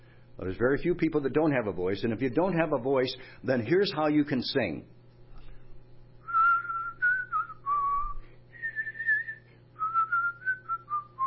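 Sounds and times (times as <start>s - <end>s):
low steady hum: 0.0s - 11.2s
speech: 0.4s - 5.0s
person whistling a simple melody: 6.2s - 11.2s.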